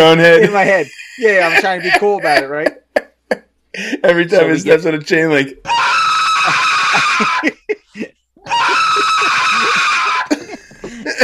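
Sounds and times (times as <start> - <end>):
speech: 0.0 - 2.8, 3.8 - 6.6, 7.2 - 9.1
laughter: 0.3 - 4.8, 5.8 - 11.2
long loud shrill screams from a sound effect: 5.6 - 7.6, 8.4 - 10.4.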